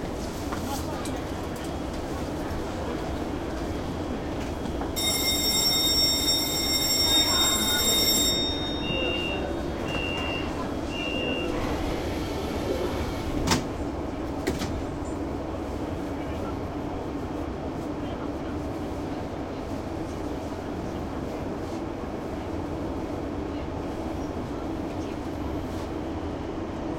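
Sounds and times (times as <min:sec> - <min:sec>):
subway train running: 0:00.0 - 0:26.9
short beeps: 0:05.0 - 0:11.6.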